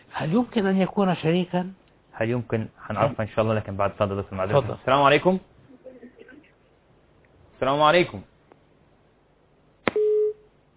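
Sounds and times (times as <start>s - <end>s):
speech: 0.2s - 5.5s, 7.6s - 8.3s
telephone busy tone after a dropped call: 9.9s - 10.4s.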